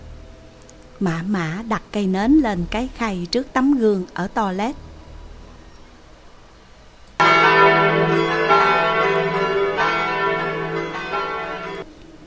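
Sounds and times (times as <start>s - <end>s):
speech: 1.0s - 4.8s
church bell tolling: 7.2s - 11.9s.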